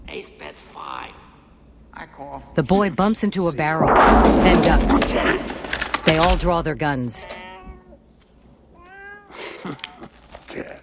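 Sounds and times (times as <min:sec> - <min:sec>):
speech: 0:00.2 - 0:01.3, 0:02.0 - 0:07.5
broadband rustling and movement: 0:03.8 - 0:06.4
black cat meowing: 0:07.2 - 0:08.0, 0:08.8 - 0:09.4.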